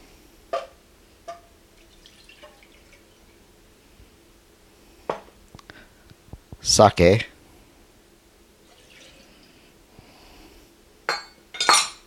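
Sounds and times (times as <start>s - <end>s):
soy sauce being poured in splashes and drips: 1.3s - 3.4s, 8.7s - 9.6s
speech: 6.7s - 7.3s.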